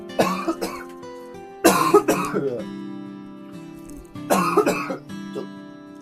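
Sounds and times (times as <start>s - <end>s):
person coughing: 0.2s - 0.9s, 1.7s - 2.6s, 4.3s - 5.5s
speech: 2.4s - 2.9s.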